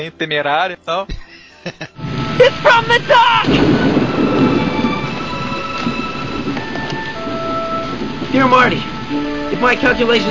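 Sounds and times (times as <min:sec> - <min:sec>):
speech: 0:00.0 - 0:03.9, 0:08.3 - 0:10.3
laughter: 0:01.1 - 0:03.8
deep continuous rumble of thunder: 0:02.0 - 0:10.3
heavy rain from a storm: 0:02.0 - 0:10.3
faint high whistling tones: 0:03.4 - 0:10.3.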